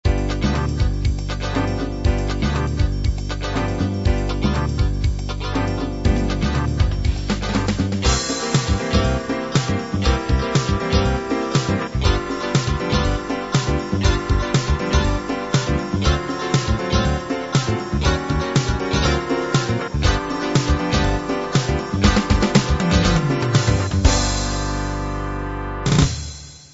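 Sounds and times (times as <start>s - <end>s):
progressive rock music: 0.1s - 26.6s.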